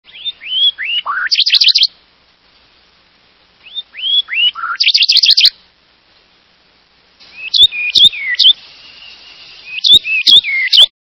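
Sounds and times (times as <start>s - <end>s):
Blackburnian Warbler singing: 0.1s - 2.0s, 3.6s - 5.6s, 7.2s - 10.9s.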